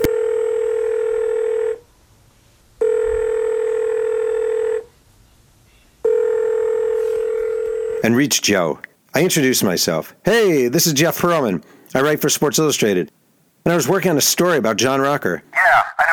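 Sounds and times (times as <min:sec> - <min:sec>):
telephone dial tone: 0:00.0 - 0:01.8, 0:02.8 - 0:04.8, 0:06.1 - 0:08.0
speech: 0:08.1 - 0:15.5.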